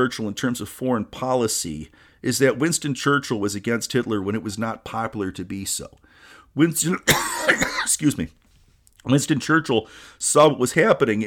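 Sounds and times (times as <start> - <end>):
speech: 0.0 - 8.4, 9.0 - 11.2
man coughing: 6.9 - 8.0.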